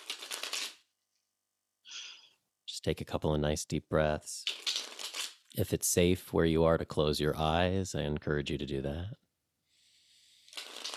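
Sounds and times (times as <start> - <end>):
tarot cards being shuffled: 0.0 - 0.8, 4.4 - 5.5, 10.4 - 10.9
speech: 2.8 - 4.5, 5.6 - 9.2.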